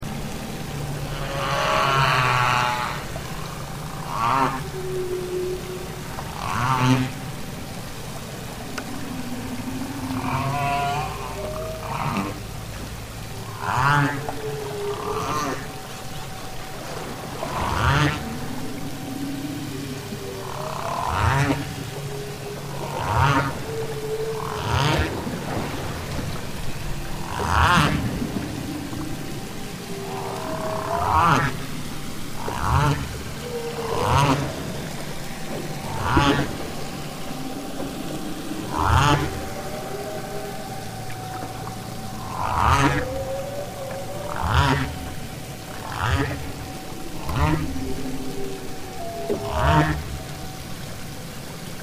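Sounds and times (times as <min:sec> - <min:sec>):
whale song echo: 0:00.0 - 0:51.8.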